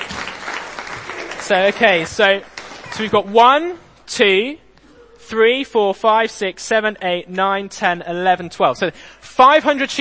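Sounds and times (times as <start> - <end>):
schoolgirls clapping in a class: 0.0 - 3.0
speech: 1.5 - 4.6, 5.3 - 9.9.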